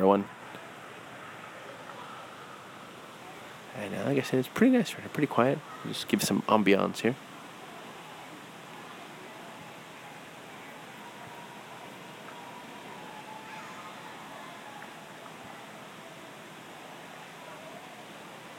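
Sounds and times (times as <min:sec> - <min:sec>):
distant pool fountain splashing water: 0:00.0 - 0:18.5
speech: 0:00.1 - 0:00.4, 0:03.8 - 0:07.3.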